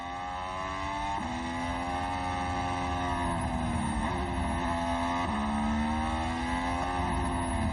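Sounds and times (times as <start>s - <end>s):
Formula 1 race car engine whining on an out lap: 0.0s - 7.7s.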